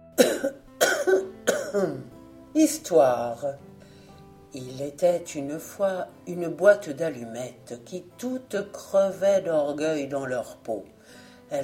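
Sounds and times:
man coughing: 0.2s - 2.0s
speech: 1.8s - 3.7s, 4.5s - 11.6s.

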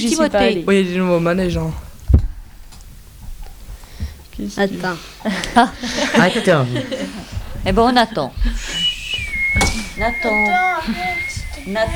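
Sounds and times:
speech: 0.0s - 1.8s, 4.4s - 11.9s
laughter: 5.2s - 11.9s
person whistling a sustained high note: 8.4s - 11.9s.

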